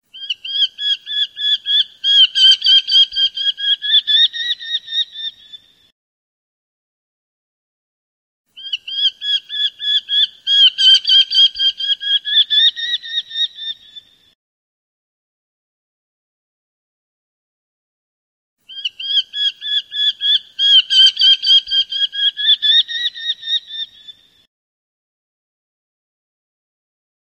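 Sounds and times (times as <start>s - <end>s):
kestrel call played on a bird call instrument: 0.1s - 5.7s, 8.6s - 14.2s, 18.6s - 24.3s.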